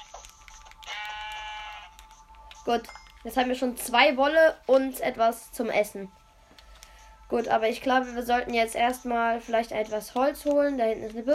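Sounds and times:
sheep bleating in a video game: 0.9s - 2.0s
speech: 2.6s - 6.2s, 7.3s - 11.3s.

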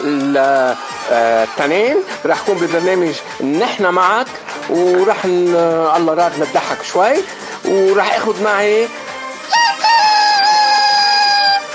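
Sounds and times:
speech: 0.4s - 9.0s
rooster crowing: 9.5s - 11.7s.

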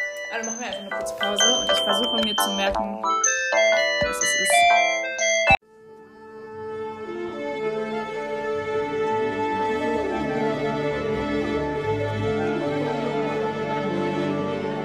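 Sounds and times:
electronic telephone ringtone melody of stepped beeps: 0.0s - 5.6s
sustained musical passage with layered tones: 0.0s - 14.8s
speech: 0.3s - 5.0s.

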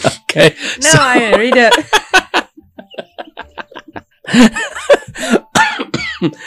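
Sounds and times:
speech: 0.4s - 2.0s, 4.4s - 4.6s, 6.2s - 6.4s
laughter: 0.8s - 5.5s
breathy laugh-like gasps: 5.2s - 5.5s
person coughing: 5.2s - 6.4s.

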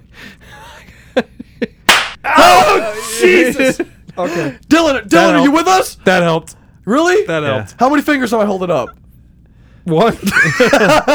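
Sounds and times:
laughter: 0.6s - 4.6s, 10.1s - 11.1s
hard loud slap to the face: 1.9s - 2.2s
light smacks: 1.9s - 2.2s
speech: 3.2s - 9.0s, 9.8s - 11.1s.

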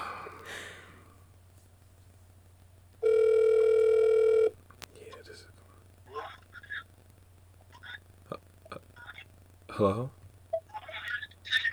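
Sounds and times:
electronic ringback tone on an outgoing phone call: 3.0s - 4.6s
speech: 9.8s - 10.2s.

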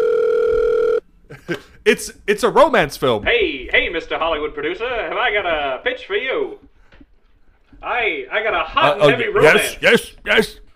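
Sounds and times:
telephone ringing with a steady electronic tone: 0.0s - 1.0s
speech: 1.5s - 6.7s, 7.8s - 10.6s.

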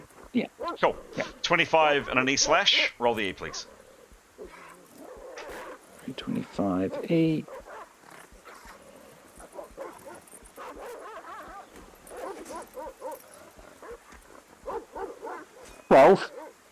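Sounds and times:
speech: 0.4s - 3.7s, 6.1s - 7.6s, 15.9s - 16.4s
dog barking: 6.8s - 8.8s, 9.4s - 16.6s.

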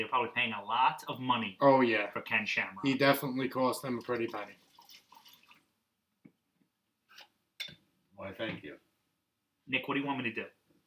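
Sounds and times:
speech: 0.0s - 4.7s, 8.2s - 8.8s, 9.7s - 10.6s
liquid being poured: 3.0s - 5.7s
liquid dripping: 3.8s - 5.7s.

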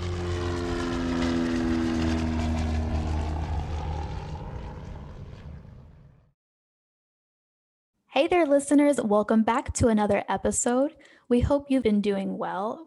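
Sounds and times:
propeller airplane taking off: 0.0s - 6.3s
speech: 8.2s - 12.8s.

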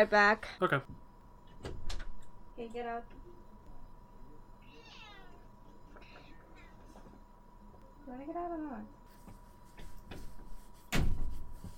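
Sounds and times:
speech: 0.0s - 1.0s, 2.6s - 3.2s, 8.1s - 9.0s
low hum: 0.0s - 11.7s
cat meowing angrily: 4.6s - 5.4s.

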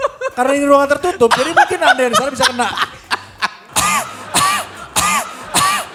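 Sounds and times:
laughter: 0.0s - 5.9s
speech: 0.4s - 2.9s
person coughing: 4.3s - 5.9s.

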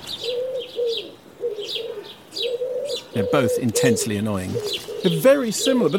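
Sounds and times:
small birds chirping faintly: 0.0s - 5.9s
wood pigeon cooing: 0.0s - 5.9s
speech: 3.2s - 5.9s.

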